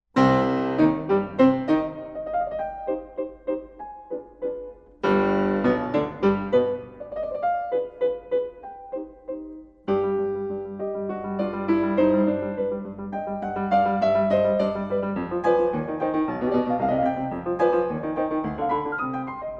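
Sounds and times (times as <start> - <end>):
piano sonata in C minor: 0.1 - 19.5.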